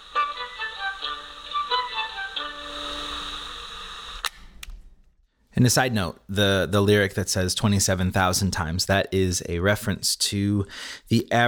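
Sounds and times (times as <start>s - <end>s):
thin lo-fi recording of tonal music: 0.0s - 3.7s
faint hiss: 0.0s - 8.3s
speech: 5.6s - 11.4s.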